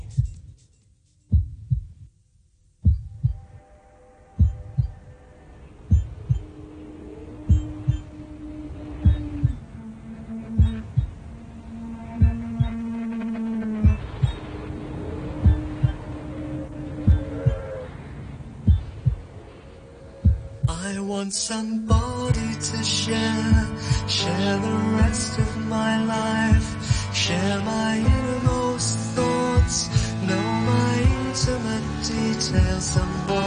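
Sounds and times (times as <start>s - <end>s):
heartbeat sound effect in a song: 0.0s - 0.7s, 1.3s - 2.2s, 2.8s - 3.6s, 4.4s - 5.2s, 5.8s - 6.7s, 7.4s - 8.2s, 8.8s - 11.4s, 12.0s - 14.5s, 15.2s - 16.3s, 17.0s - 17.8s, 18.6s - 19.4s, 20.2s - 20.8s, 21.9s - 22.6s, 23.4s - 24.2s, 25.0s - 25.8s, 26.4s - 27.3s, 28.0s - 28.8s, 29.6s - 30.3s, 31.0s - 31.8s, 32.6s - 33.3s
soft sustained musical tones: 3.3s - 18.6s, 20.8s - 33.4s
speech: 21.3s - 29.0s, 30.6s - 33.4s.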